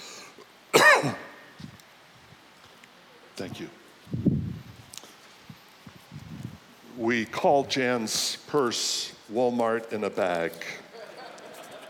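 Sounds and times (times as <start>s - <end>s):
cough with a rough throat-clearing rasp: 0.7s - 1.4s
speech: 1.0s - 1.2s, 3.4s - 4.3s, 7.0s - 10.8s
laughter: 10.8s - 11.8s.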